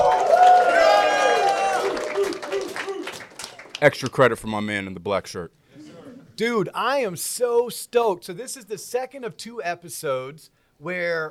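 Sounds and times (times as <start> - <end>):
live crowd cheering at a university college of business: 0.0 - 4.0
people clapping: 0.0 - 4.3
speech: 3.8 - 5.6, 6.4 - 11.2.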